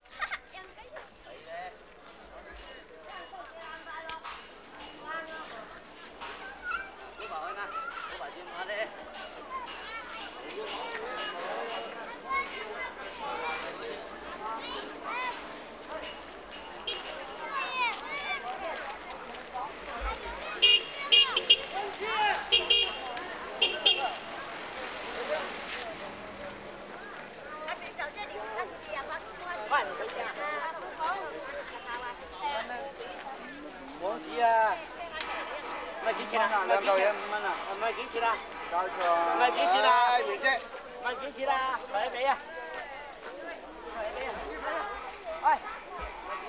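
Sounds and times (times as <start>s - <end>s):
car traffic and traffic jam noise: 0.0s - 46.4s.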